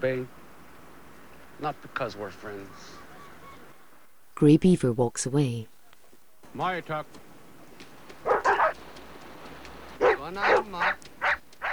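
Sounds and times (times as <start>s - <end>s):
speech: 0.0s - 0.4s, 1.6s - 3.0s, 4.4s - 5.7s, 6.5s - 7.3s, 10.2s - 11.1s
steady low hum: 0.0s - 11.7s
two dogs barking from across a fire: 7.8s - 11.7s.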